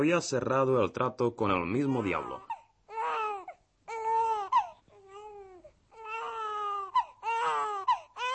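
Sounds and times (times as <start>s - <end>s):
speech: 0.0s - 2.4s
newborn baby crying with wailing bursts and whimper: 1.7s - 8.3s.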